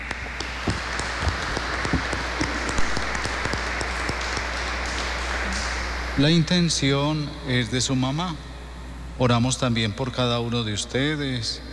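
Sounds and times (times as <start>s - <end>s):
audience applauding: 0.0s - 6.8s
speech: 6.2s - 8.5s, 9.2s - 11.7s.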